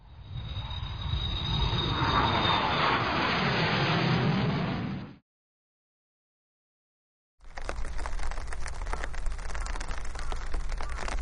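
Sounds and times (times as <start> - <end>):
thin high whine of an airplane: 0.0 - 3.2
airplane passing overhead: 0.0 - 5.2
hissing patter of rain: 7.4 - 11.1.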